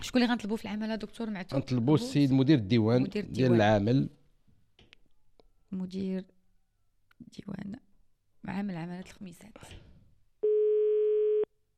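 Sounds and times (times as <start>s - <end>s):
speech: 0.0s - 4.2s, 5.7s - 6.4s, 7.2s - 9.9s
electronic telephone ringback tone on an outgoing call to a government office in Khemisset: 10.4s - 11.5s.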